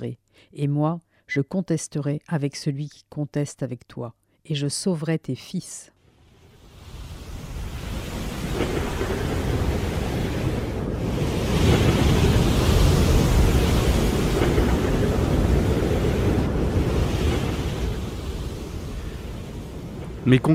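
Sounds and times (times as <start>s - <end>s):
speech: 0.0s - 5.9s, 20.2s - 20.5s
heavy surf with ocean waves crashing: 6.1s - 20.5s.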